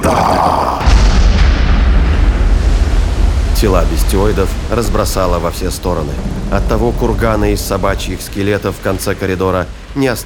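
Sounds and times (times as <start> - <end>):
explosive charge detonating in a starship corridor: 0.0 - 9.8
heavy sustained low rumble after explosion: 0.0 - 10.2
speech: 3.6 - 10.2.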